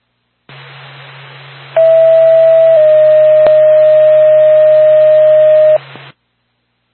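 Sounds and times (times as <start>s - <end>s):
radio channel hiss: 0.5s - 2.5s, 5.7s - 6.2s
ambulance dispatch radio paging alert tone in Lancaster: 1.8s - 5.8s.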